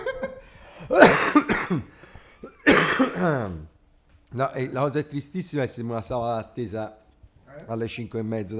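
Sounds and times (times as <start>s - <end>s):
harsh coughing trailing into a raspy voiced exhale: 0.8s - 3.7s
speech: 0.9s - 2.1s, 3.2s - 3.7s, 4.3s - 8.5s.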